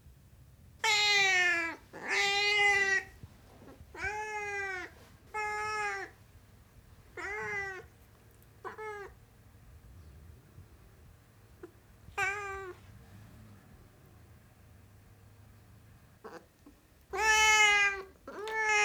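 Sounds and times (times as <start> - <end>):
Siamese cat meowing loudly: 0.8 - 3.2, 3.9 - 6.2, 7.2 - 7.9, 12.2 - 12.8, 17.1 - 18.8.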